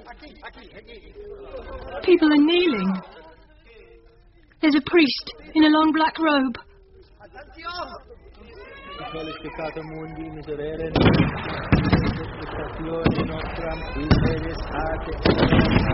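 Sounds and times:
speech: 0.2 - 3.3, 4.6 - 6.7, 7.3 - 15.9
artillery fire from giant tanks: 10.9 - 15.9.

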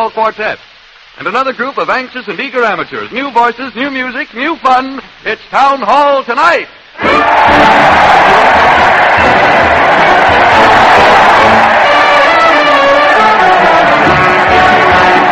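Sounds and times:
speech: 0.0 - 9.8
large crowd cheering and shouting with whoops and yells: 7.0 - 15.3.

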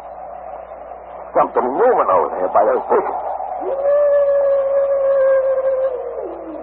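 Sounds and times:
speech: 1.4 - 4.2
wolf howling: 2.6 - 6.6.

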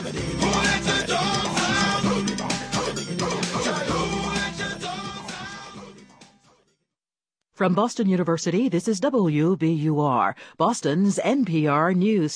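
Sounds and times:
loud busy dance track: 0.0 - 6.4
speech: 7.6 - 12.3.

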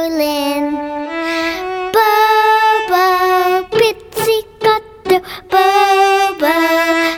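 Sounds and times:
toddlers singing: 0.2 - 7.1.

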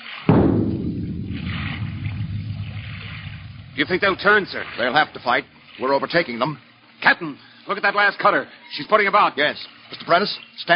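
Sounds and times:
ship's bow gun firing a warning shot at sea: 0.3 - 5.4
water noise at sea: 0.3 - 6.0
speech: 3.8 - 10.7.

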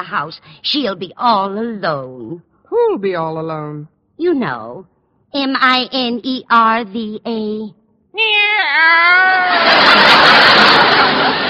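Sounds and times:
speech: 0.0 - 11.4
cat meowing: 8.2 - 9.5
laughter: 9.2 - 11.4.

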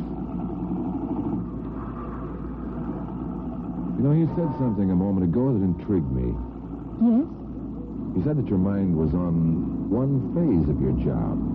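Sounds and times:
car engine humming in traffic: 0.0 - 11.5
speech: 4.0 - 7.4, 8.2 - 11.5.

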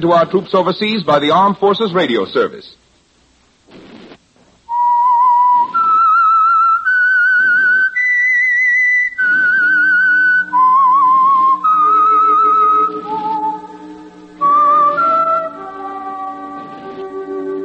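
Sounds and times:
speech: 0.0 - 2.8
whistled theme melody signaling radio program start: 4.7 - 17.6
low orchestral accompaniment: 9.7 - 17.6.

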